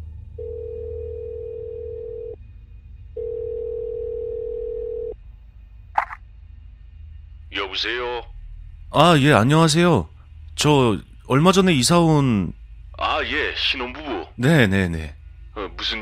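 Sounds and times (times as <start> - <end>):
low hum: 0.0 - 15.9
telephone ringback tone while calling a landlord: 0.4 - 2.4, 3.2 - 5.2
speech: 7.6 - 8.3, 8.9 - 15.9.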